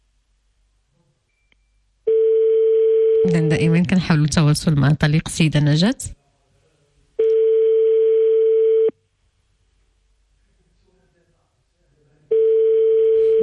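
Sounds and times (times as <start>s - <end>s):
outgoing phone call ringback tone: 2.1s - 3.6s, 7.2s - 8.9s, 12.3s - 13.4s
speech: 3.3s - 6.2s.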